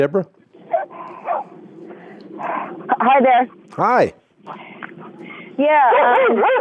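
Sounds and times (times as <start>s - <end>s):
speech: 0.0s - 0.4s, 3.0s - 4.6s, 5.6s - 6.5s
dog barking over a phone call: 0.7s - 1.5s, 5.8s - 6.5s.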